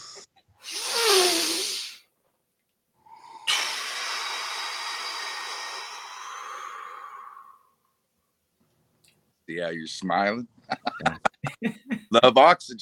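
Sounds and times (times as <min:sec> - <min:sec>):
deep breath taken during a guided breathing exercise: 0:00.0 - 0:02.0, 0:03.0 - 0:07.8
speech: 0:09.5 - 0:12.7
laughter: 0:10.7 - 0:12.2.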